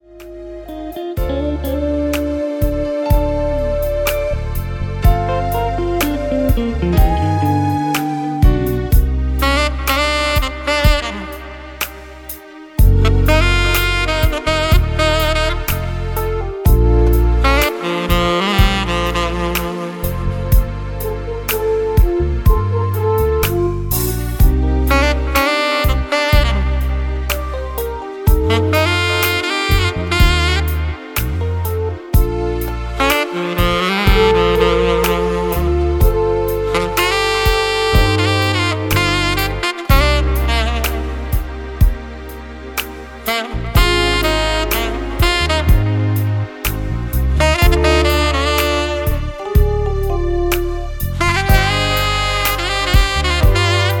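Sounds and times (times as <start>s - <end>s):
saxophonist playing saxophone: 0.0s - 53.9s.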